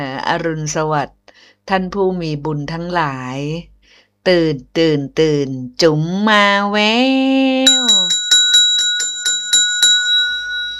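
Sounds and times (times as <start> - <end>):
speech: 0.0 - 8.0
small mindfulness bell ringing: 7.7 - 10.7.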